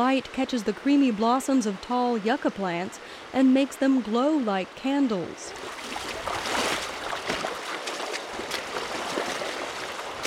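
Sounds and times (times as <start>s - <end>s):
speech: 0.0s - 6.4s
rushing water of a creek in a steep canyon: 0.0s - 10.2s
person wading across a creek, sloshing and splashing: 5.5s - 10.2s.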